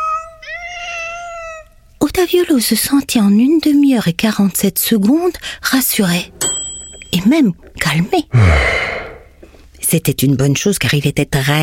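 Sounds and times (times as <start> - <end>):
cat meowing: 0.0 - 1.7
speech: 2.2 - 6.4, 7.2 - 8.9, 9.9 - 11.6.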